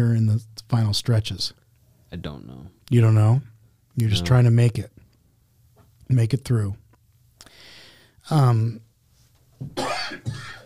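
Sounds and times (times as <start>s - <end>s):
speech: 0.0s - 5.0s, 6.1s - 6.8s, 8.3s - 8.9s, 9.6s - 9.9s
person coughing: 9.8s - 10.6s.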